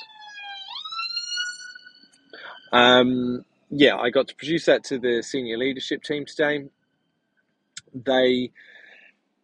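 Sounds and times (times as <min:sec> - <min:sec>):
emergency vehicle siren wailing outside: 0:00.0 - 0:06.2
speech: 0:02.7 - 0:06.8, 0:07.9 - 0:08.8.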